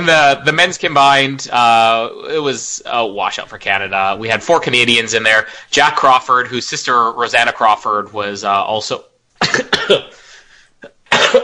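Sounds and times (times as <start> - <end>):
speech: 0.0 - 10.2
man coughing: 9.4 - 11.4.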